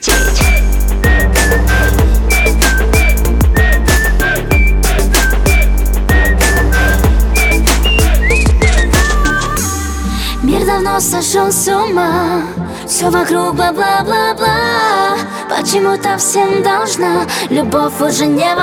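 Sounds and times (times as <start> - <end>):
whistled melody: 0.0 - 10.8
pop song with a steady driving beat and bass: 0.0 - 18.6
speech: 11.2 - 18.6.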